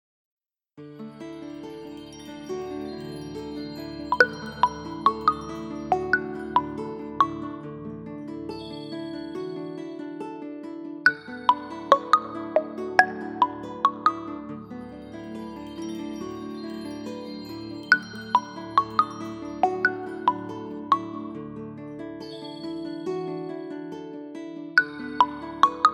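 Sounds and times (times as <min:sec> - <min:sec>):
Samsung phone ringtone: 0:01.4 - 0:07.6, 0:11.1 - 0:21.4, 0:24.8 - 0:25.9.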